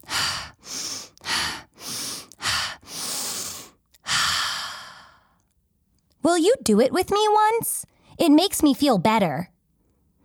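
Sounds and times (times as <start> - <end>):
person breathing slowly and deeply in and out: 0.0 - 5.4
speech: 6.3 - 9.5.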